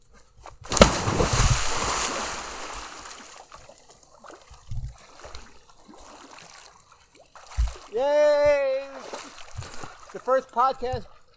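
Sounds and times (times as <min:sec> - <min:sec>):
swimming pool water sloshing and rippling: 0:00.6 - 0:08.0, 0:09.0 - 0:10.3
cannonball jump into a swimming pool splashing: 0:00.7 - 0:03.6
speech: 0:10.4 - 0:11.2.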